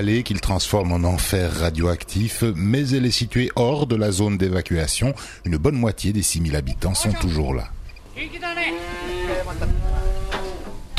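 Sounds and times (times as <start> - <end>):
speech: 0.0 - 10.0
cattle mooing on a farm in a valley near Fukushima: 8.4 - 10.8.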